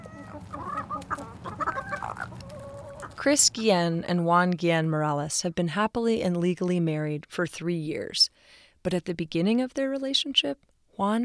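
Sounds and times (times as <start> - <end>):
several chickens clucking and murmuring: 0.0 - 3.2
speech: 3.2 - 11.2.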